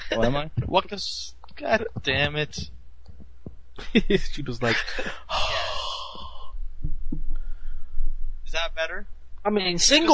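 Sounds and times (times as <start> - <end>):
laughter: 0.0 - 0.3, 3.8 - 5.3
thumps: 0.0 - 4.3, 6.2 - 8.4
low hum: 0.0 - 10.1
speech: 0.1 - 2.8, 3.8 - 5.6, 8.6 - 10.1
person breathing into a microphone: 5.0 - 6.6, 7.3 - 8.2.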